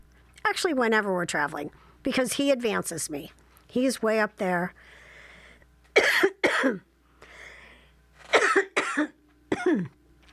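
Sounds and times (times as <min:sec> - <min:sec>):
speech: 0:00.5 - 0:05.0, 0:06.6 - 0:06.9
raspy breath: 0:04.8 - 0:05.6, 0:07.2 - 0:08.0
person coughing: 0:06.0 - 0:06.9, 0:08.3 - 0:10.0.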